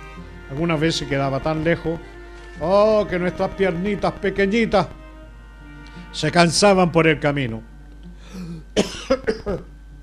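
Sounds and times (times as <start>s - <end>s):
speech: 0.5s - 5.0s, 6.1s - 7.7s
hoarse throat-clearing coughs: 8.3s - 9.7s.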